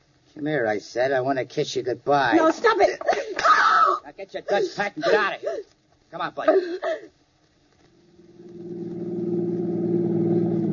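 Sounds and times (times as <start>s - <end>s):
speech: 0.4s - 7.2s
car engine starting and revving: 8.2s - 10.7s.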